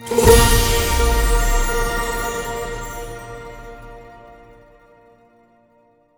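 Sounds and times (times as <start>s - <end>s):
mega win stop game jingle: 0.0s - 4.5s.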